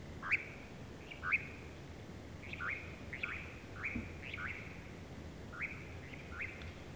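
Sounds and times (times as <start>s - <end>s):
nightjar call: 0.2s - 6.8s.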